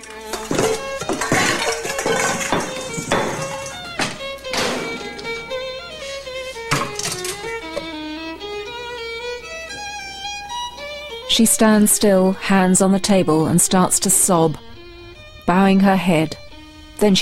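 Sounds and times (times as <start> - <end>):
metal pots and pans clanking as taken from racks and cupboards in a kitchen: 0.0 - 7.9
speech: 11.4 - 14.7, 15.5 - 16.4, 17.0 - 17.2.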